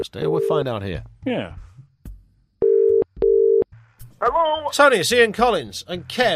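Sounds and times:
speech: 0:00.0 - 0:01.7, 0:04.2 - 0:06.3
telephone ringback tone heard down the line: 0:02.6 - 0:03.6.

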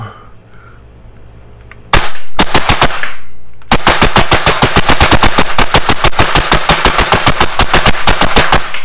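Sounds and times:
electric blowback airsoft rifle firing semi-auto: 0:01.9 - 0:08.8.

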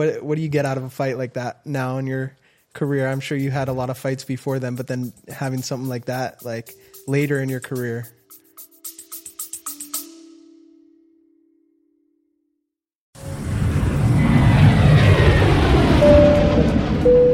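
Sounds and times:
speech: 0:00.0 - 0:08.2
rhythmic musical sting: 0:02.8 - 0:10.2
jet engine roar inside a private jet cabin: 0:13.2 - 0:17.3.

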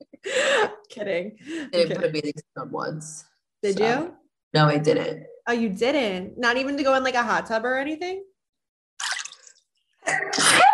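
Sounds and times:
speech: 0:01.0 - 0:08.3, 0:10.1 - 0:10.7
person sneezing: 0:10.1 - 0:10.7.

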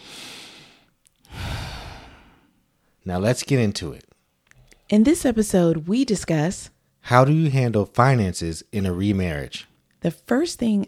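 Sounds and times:
deep breath: 0:00.0 - 0:03.0
speech: 0:03.0 - 0:04.1, 0:04.9 - 0:10.8.

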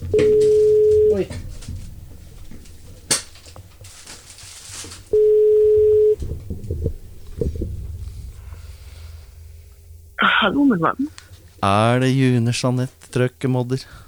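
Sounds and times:
telephone ringing tone: 0:00.0 - 0:01.3, 0:05.1 - 0:06.2
low rumble: 0:00.0 - 0:14.0
speech: 0:10.7 - 0:14.0.

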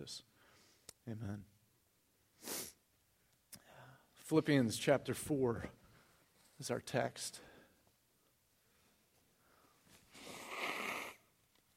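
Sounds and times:
speech: 0:00.0 - 0:00.3, 0:01.0 - 0:01.5, 0:04.3 - 0:05.8, 0:06.6 - 0:07.5
nose blowing into a tissue: 0:02.4 - 0:02.8, 0:10.1 - 0:11.3
soft snuffle: 0:09.9 - 0:11.2.

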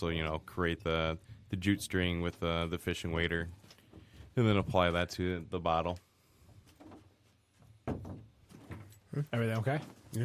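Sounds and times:
speech: 0:00.0 - 0:03.7, 0:04.4 - 0:06.1, 0:09.2 - 0:10.2
banging on the front door: 0:07.8 - 0:08.9.

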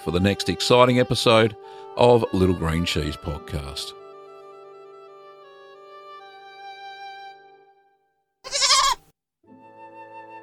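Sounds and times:
speech: 0:00.0 - 0:04.0
goat bleating: 0:08.5 - 0:09.0.

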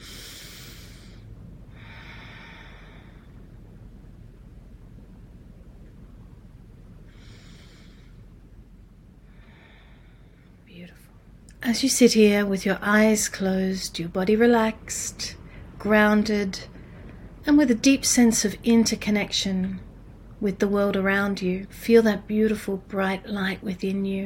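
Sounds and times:
slow deep breaths during a guided meditation: 0:00.0 - 0:04.0, 0:07.0 - 0:10.7, 0:16.7 - 0:17.4
steady low hiss: 0:00.0 - 0:24.2
speech: 0:11.7 - 0:16.7, 0:17.5 - 0:24.2.

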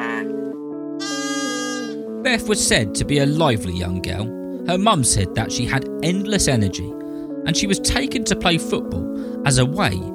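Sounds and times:
sheep bleating: 0:00.0 - 0:00.4, 0:01.0 - 0:02.0
speech: 0:02.2 - 0:10.1.

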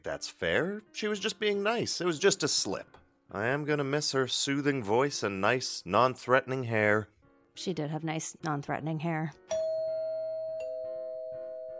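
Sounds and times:
speech: 0:00.0 - 0:09.6
doorbell two-tone ding-dong: 0:09.5 - 0:11.7.

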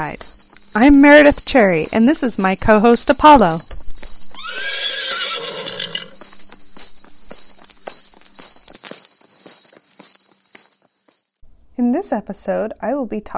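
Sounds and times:
speech: 0:00.0 - 0:04.2, 0:12.2 - 0:13.3
faint hoof clops: 0:00.0 - 0:11.4
high-pitched chorus of crickets: 0:00.0 - 0:11.4
horse whinnying: 0:04.3 - 0:06.2.

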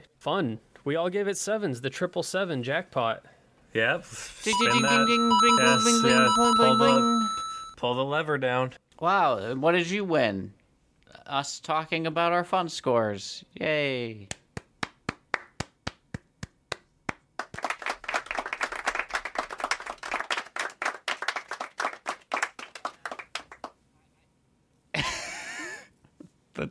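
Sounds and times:
speech: 0:00.2 - 0:10.6, 0:11.2 - 0:14.4
small group clapping: 0:14.3 - 0:23.8.

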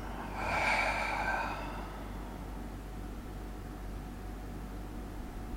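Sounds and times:
deep audible exhale in a guided mindfulness practice: 0:00.0 - 0:02.7
faint steady hiss: 0:00.0 - 0:05.4.

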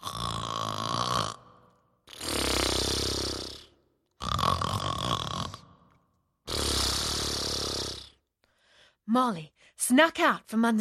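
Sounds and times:
loud deep snoring: 0:00.0 - 0:08.3
speech: 0:09.2 - 0:10.8.

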